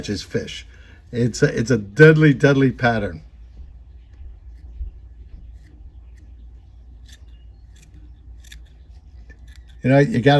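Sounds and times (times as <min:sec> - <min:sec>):
speech: 0:00.0 - 0:03.3, 0:09.8 - 0:10.3
steady low hum: 0:00.0 - 0:10.3
scissors snipping fly-tying materials on a minnow streamer fly: 0:07.0 - 0:09.8.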